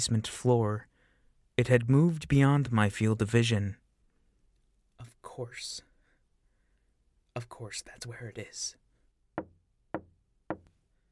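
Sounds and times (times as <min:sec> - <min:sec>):
speech: 0:00.0 - 0:00.9, 0:01.6 - 0:03.8, 0:05.0 - 0:05.9, 0:07.4 - 0:08.8
soft knocks on a solid surface: 0:09.4 - 0:10.7.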